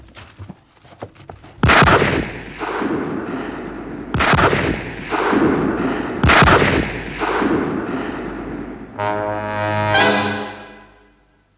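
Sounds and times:
hunting rifle gunshots at night: 1.6 - 8.8
rising tonal musical sting: 9.0 - 11.1.

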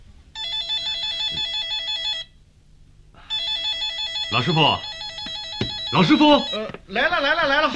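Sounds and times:
warbling electronic telephone ring on an office desk: 0.4 - 2.4, 3.3 - 6.7
speech: 4.3 - 4.9, 5.9 - 7.7.

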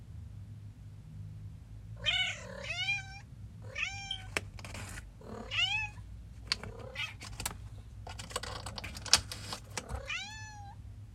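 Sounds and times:
low steady hum: 0.0 - 11.1
cat meowing: 2.0 - 4.4, 5.3 - 6.0, 6.7 - 7.2, 9.8 - 10.8.

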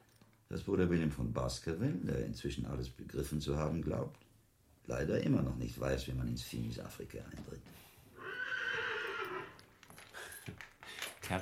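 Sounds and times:
speech: 0.5 - 7.9
horse neighing: 8.1 - 9.6.

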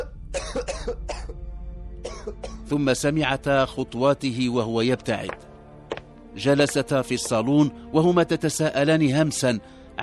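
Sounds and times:
man coughing outside a door: 0.0 - 1.4, 2.0 - 2.7
speech: 0.8 - 1.3, 2.2 - 5.5, 6.4 - 10.0.

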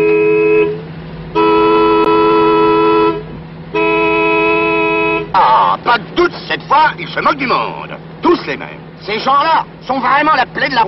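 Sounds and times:
car horn honking impatiently on the road: 0.0 - 5.8
speech: 6.0 - 10.8.

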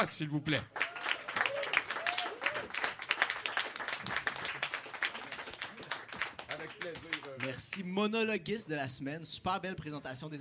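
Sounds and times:
speech: 0.0 - 0.8, 7.5 - 10.4
audience applause for a comedy monologue performer: 0.6 - 7.8
audience cheers and whoops: 0.8 - 3.0.

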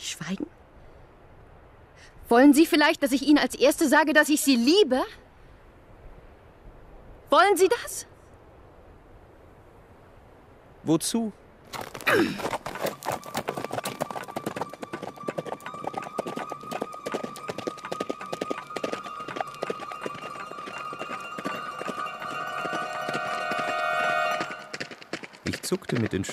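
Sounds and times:
speech: 0.2 - 0.6, 2.3 - 5.2, 7.3 - 8.1, 10.8 - 12.7, 25.7 - 26.3
horse galloping along a narrow road: 11.7 - 26.3.

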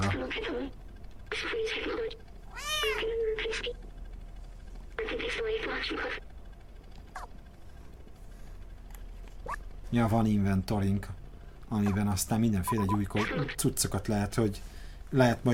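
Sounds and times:
speech: 0.4 - 3.8, 5.1 - 6.3, 9.5 - 15.5
cat meowing in a video game: 2.5 - 3.2.

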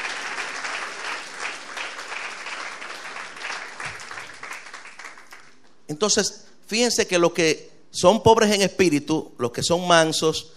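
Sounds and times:
church congregation applauding during a sermon: 0.0 - 5.8
speech: 5.9 - 10.5.

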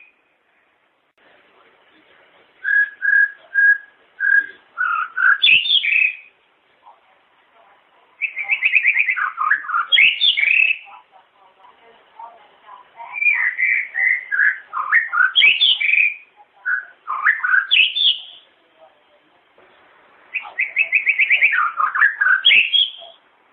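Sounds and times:
long-tailed shrike chattering and whistling: 2.6 - 6.4, 8.2 - 10.9, 13.0 - 18.4, 20.3 - 23.2.

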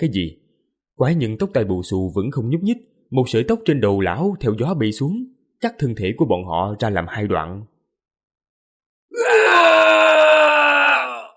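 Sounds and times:
speech: 0.0 - 0.4, 1.0 - 7.7
two men screaming in pain: 9.1 - 11.3.

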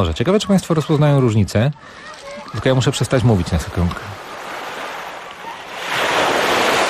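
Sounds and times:
speech: 0.0 - 4.2
sea waves washing onto the shore: 1.8 - 6.8.

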